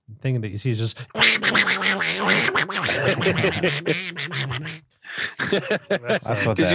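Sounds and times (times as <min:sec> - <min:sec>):
speech: 0:00.2 - 0:06.7
man imitating a duck's quack in a raspy nasal voice: 0:01.1 - 0:05.6
laughter: 0:02.3 - 0:06.7.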